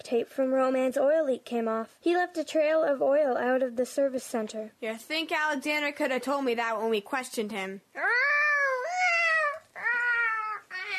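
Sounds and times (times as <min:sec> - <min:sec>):
speech: 0:00.0 - 0:08.4
cat yowling and caterwauling: 0:08.0 - 0:10.9.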